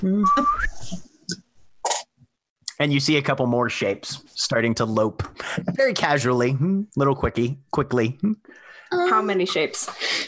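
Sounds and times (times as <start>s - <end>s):
person whistling a short upward-gliding tone: 0.0s - 0.9s
speech: 0.0s - 1.0s, 2.8s - 10.2s.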